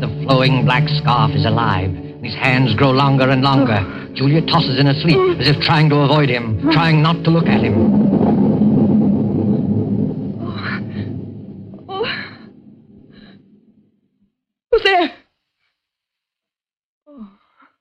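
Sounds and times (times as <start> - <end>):
speech: 0.0 - 8.2
thunder rumbling: 0.0 - 14.1.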